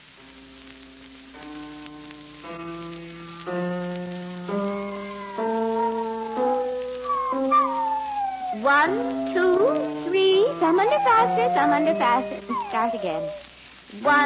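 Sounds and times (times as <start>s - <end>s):
steady hiss: 0.0s - 14.2s
piano notes played during a piano lesson: 2.4s - 13.4s
big fat spaniel howling: 4.5s - 13.5s
speech: 10.7s - 14.2s.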